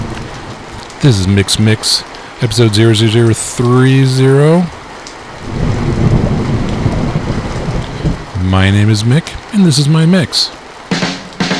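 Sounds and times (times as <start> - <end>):
steady dense rainfall: 0.0 - 11.5
speech: 1.0 - 4.8, 8.5 - 10.6
deep low thunder rumble: 5.4 - 8.4.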